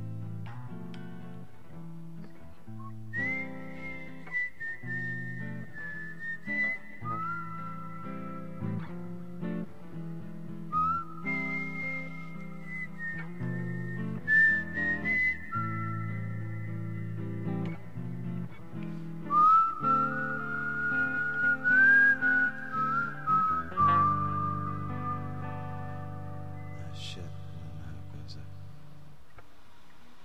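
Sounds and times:
person whistling a bright high melody into the microphone: 2.8s - 9.1s, 10.7s - 17.6s, 19.2s - 27.9s.

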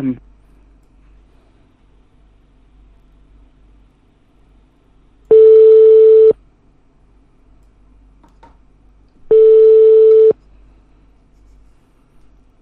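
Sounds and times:
telephone call ringing tones: 5.3s - 6.4s, 9.3s - 10.4s.

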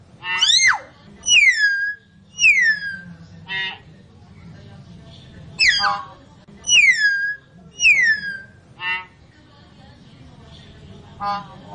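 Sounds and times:
lovebird calls used as a lure: 0.2s - 3.8s, 5.6s - 6.0s, 6.6s - 9.1s.

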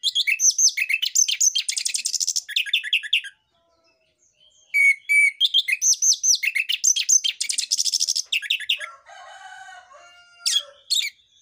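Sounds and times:
orange-headed thrush singing varied whistled and chirped notes: 0.0s - 3.3s, 4.7s - 8.8s.

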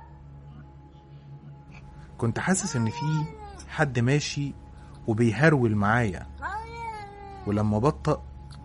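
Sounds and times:
speech: 2.2s - 6.3s, 7.5s - 8.3s
cat meowing in a long drawn-out wail: 2.6s - 3.7s, 6.4s - 7.6s.

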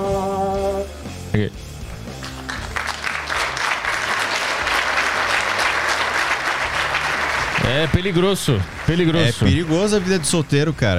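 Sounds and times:
speech: 1.4s - 1.6s, 7.8s - 10.9s
audience applauding: 2.1s - 10.9s.

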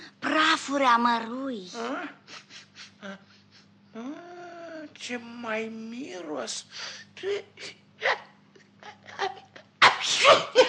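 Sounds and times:
speech: 0.7s - 2.4s, 3.0s - 3.3s, 3.9s - 8.2s, 10.1s - 10.6s
performer voicing a cartoon mouse character's sneeze: 9.8s - 10.6s.

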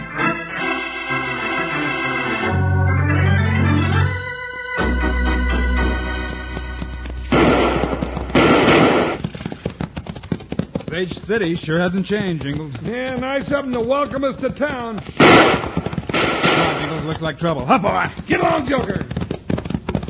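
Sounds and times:
dramatic orchestral music with falling, sliding figures: 0.0s - 7.0s
rapid volley of six-gun shots in a Western town shootout: 7.3s - 9.2s, 15.2s - 17.3s
speech: 11.0s - 15.7s, 17.0s - 19.2s.

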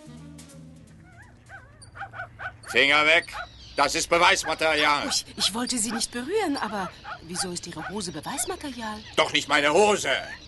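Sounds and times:
dog barking excitedly near dense tall bushes: 1.2s - 3.6s, 4.2s - 8.1s
speech: 2.7s - 10.4s.

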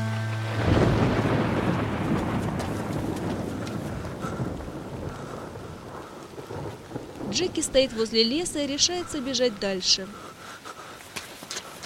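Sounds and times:
steady hiss of rain outside: 0.3s - 11.8s
deep rolling thunder outside: 0.5s - 9.4s
speech: 7.4s - 10.3s.

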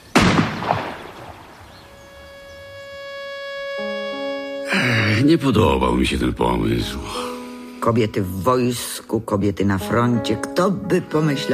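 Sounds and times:
rifle shot during military shooting practice: 0.0s - 1.7s
steady held tones: 1.2s - 7.0s
speech: 4.8s - 11.5s.

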